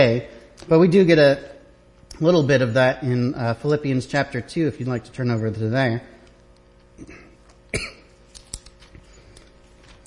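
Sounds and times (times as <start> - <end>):
speech: 0.0 - 1.6, 2.2 - 6.1, 7.0 - 7.9
person coughing from a dry throat: 7.0 - 8.2.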